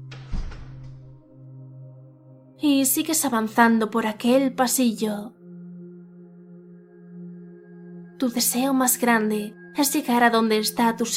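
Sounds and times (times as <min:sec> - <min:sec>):
door swinging shut with a heavy thud: 0:00.0 - 0:01.2
low rumble: 0:00.0 - 0:01.2
speech: 0:02.6 - 0:05.4, 0:08.2 - 0:11.1.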